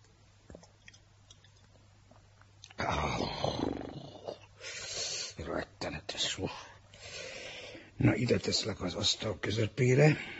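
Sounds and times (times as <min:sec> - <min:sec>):
gulping and swallowing a sip of pálinka from a bottle: 0:00.5 - 0:04.5
speech: 0:06.4 - 0:06.6, 0:08.0 - 0:10.3.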